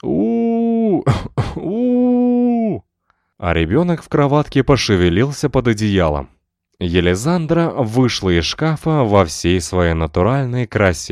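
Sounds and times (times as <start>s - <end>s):
person quietly clearing throat: 0.9s - 2.4s
speech: 3.4s - 11.1s.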